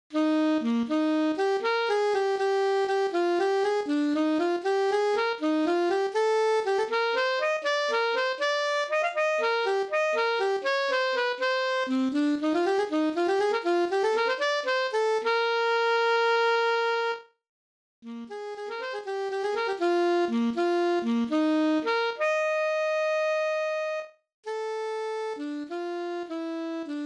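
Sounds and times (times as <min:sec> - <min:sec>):
alto saxophone: 0:00.1 - 0:17.4, 0:18.0 - 0:27.0.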